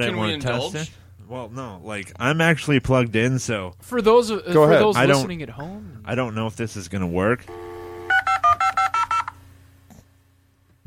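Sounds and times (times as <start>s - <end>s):
speech: 0.0s - 7.6s
touch-tone dialing beeps from a dial-up modem: 7.5s - 9.4s.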